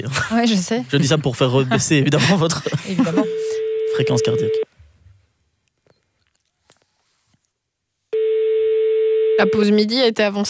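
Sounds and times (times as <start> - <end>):
speech: 0.0 - 4.6, 9.4 - 10.4
telephone ringing tone on the line: 3.2 - 4.6, 8.2 - 9.8.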